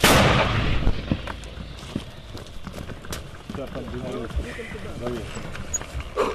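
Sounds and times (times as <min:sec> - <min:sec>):
82mm mortar rounds fired by an army mortar crew: 0:00.0 - 0:01.1
men talking outdoors: 0:01.7 - 0:06.3.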